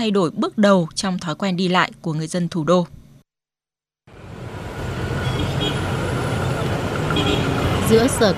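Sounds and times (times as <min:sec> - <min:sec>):
speech: 0:00.0 - 0:03.0, 0:07.2 - 0:08.3
low rumble of buses and city traffic: 0:04.1 - 0:08.3.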